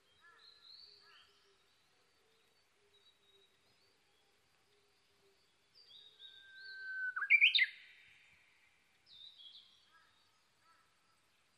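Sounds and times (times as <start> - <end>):
Japanese bush warbler song: 0.0 - 11.5.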